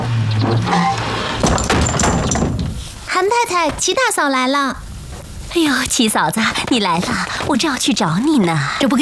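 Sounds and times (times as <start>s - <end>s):
wooden door being pushed shut: 0.4s - 2.8s
speech: 3.4s - 4.8s, 5.5s - 9.0s.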